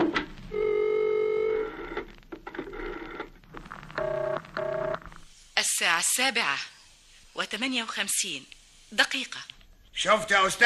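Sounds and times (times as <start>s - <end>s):
telephone ringing on a call to the speaking clock: 0.5s - 2.0s, 4.0s - 5.0s
speech: 5.6s - 6.7s, 7.4s - 10.6s.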